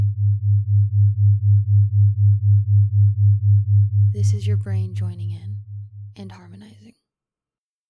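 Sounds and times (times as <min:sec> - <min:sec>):
binaural beat of two slightly different sine tones: 0:00.0 - 0:06.2
speech: 0:04.2 - 0:07.1.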